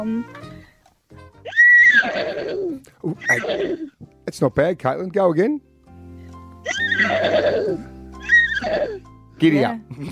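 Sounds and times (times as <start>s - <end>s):
speech: 0.0s - 0.5s, 2.0s - 5.7s, 6.6s - 7.9s, 8.6s - 10.1s
teenage girl doing a vocal imitation of a horse whinny by phone: 1.5s - 4.0s, 6.6s - 9.1s.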